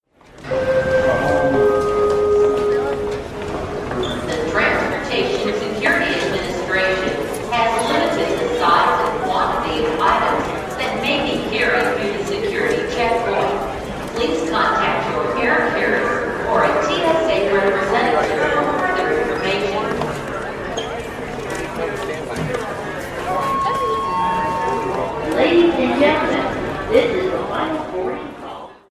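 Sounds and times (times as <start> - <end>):
airport gong: 0.4 - 4.9, 23.4 - 26.5
airport announcement: 0.4 - 20.5, 21.4 - 28.8.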